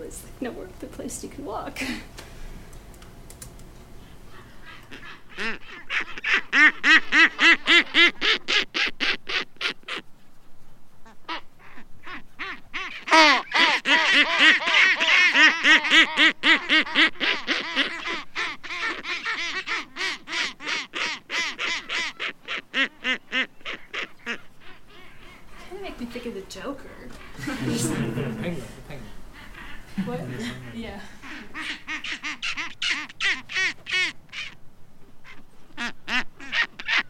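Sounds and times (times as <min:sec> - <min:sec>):
speech: 0:00.1 - 0:02.3
seabird giving a warning call near its nest: 0:04.2 - 0:10.1, 0:11.0 - 0:26.2, 0:29.2 - 0:30.0, 0:30.6 - 0:34.6, 0:35.2 - 0:37.0
laughter: 0:27.2 - 0:29.1, 0:29.7 - 0:31.7.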